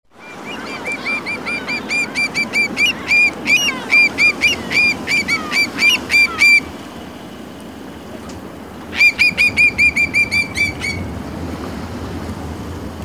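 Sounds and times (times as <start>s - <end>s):
whimbrel call: 0.2s - 6.8s, 8.9s - 11.1s.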